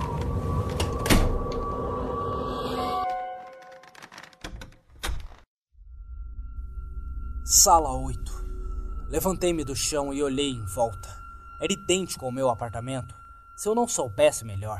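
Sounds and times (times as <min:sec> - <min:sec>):
drawn-out groaning door creak: 0:00.0 - 0:05.5
speech: 0:07.5 - 0:08.4, 0:09.1 - 0:14.7.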